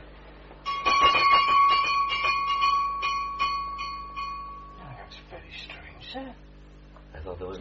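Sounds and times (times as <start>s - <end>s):
servant's call bell ringing: 0.6s - 5.0s.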